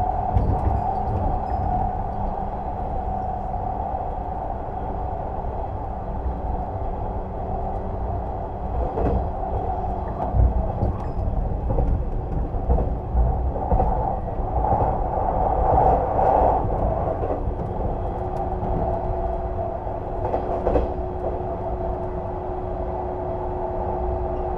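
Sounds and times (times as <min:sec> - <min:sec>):
limited express train 185 series interior rumble in motion: 0:00.0 - 0:24.5
soft knocks and rattles from the rails: 0:08.8 - 0:19.0.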